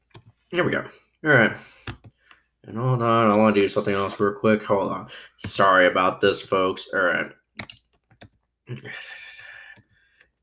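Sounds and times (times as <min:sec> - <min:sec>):
speech: 0:00.5 - 0:02.0, 0:02.6 - 0:07.8, 0:08.7 - 0:09.3
typing on a computer keyboard: 0:07.6 - 0:10.4.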